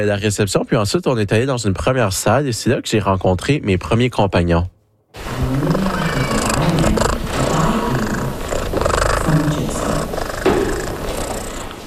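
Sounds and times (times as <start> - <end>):
speech: 0.0 - 5.8
Siamese cat purring: 5.2 - 11.8.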